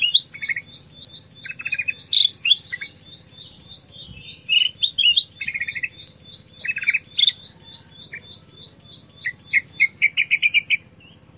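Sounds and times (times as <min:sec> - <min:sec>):
black-crested bulbul combination song used to train songbirds: 0:00.0 - 0:11.3
faint low hum: 0:00.0 - 0:11.3.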